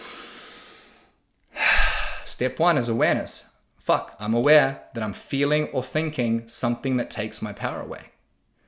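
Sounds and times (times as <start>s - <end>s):
deep breaths: 0.0s - 2.4s
speech: 2.3s - 8.2s.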